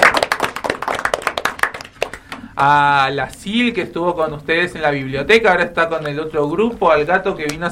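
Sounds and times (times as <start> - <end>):
crowd applause thanking helpers at an event: 0.0 - 2.5
speech: 2.6 - 7.7.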